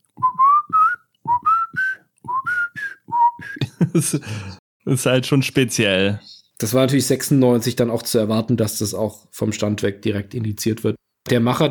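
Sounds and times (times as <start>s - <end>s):
video game character whistling a lively bouncy theme tune: 0.2s - 3.6s
laughter: 3.6s - 4.6s
speech: 3.9s - 11.6s.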